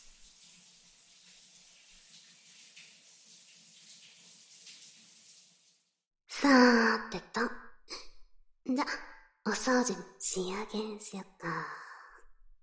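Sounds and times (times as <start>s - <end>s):
shower water running: 0.0s - 6.0s
speech: 6.4s - 7.6s, 9.6s - 11.8s.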